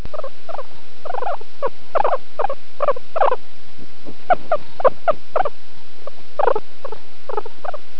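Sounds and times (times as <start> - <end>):
guinea pig chirping: 0.0 - 3.4, 4.2 - 7.8.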